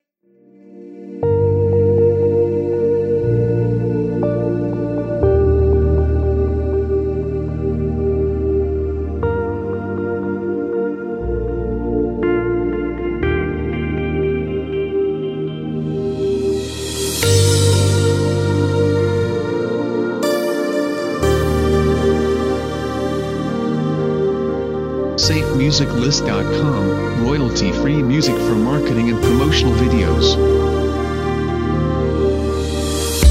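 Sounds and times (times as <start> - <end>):
atmospheric ambience: 0.4 - 33.3.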